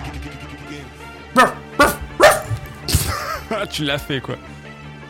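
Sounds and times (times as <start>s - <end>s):
speech: 1.4s - 1.6s, 3.7s - 4.6s
man imitating a barking dog in a rap track: 1.4s - 2.8s.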